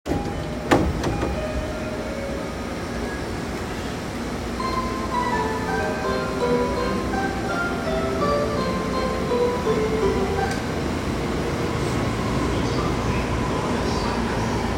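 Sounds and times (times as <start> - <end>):
train sounds: 0.1 - 14.7.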